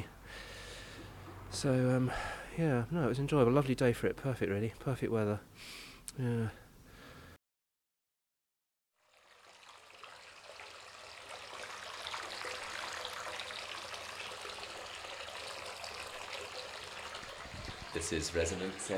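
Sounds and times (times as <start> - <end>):
speech: 1.5 - 6.6, 18.0 - 18.9
hot bath being run from the tap: 9.0 - 18.9.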